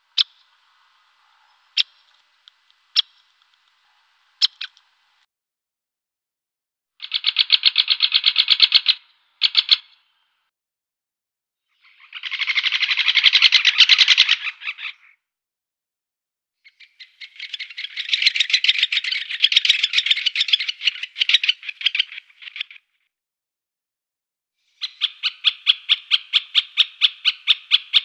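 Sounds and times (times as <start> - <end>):
great spotted woodpecker calls: 0.0 - 5.0, 7.0 - 10.2, 11.8 - 15.2, 16.6 - 22.9, 24.7 - 28.0.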